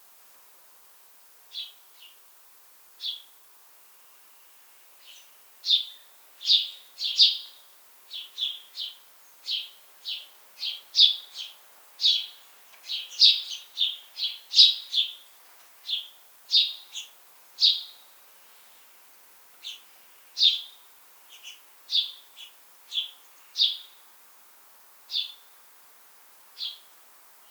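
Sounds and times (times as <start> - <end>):
House sparrow Passer domesticus chirping: 5.0 - 7.5, 8.1 - 15.2, 15.8 - 18.0, 19.6 - 24.0, 25.1 - 25.4, 26.6 - 26.9.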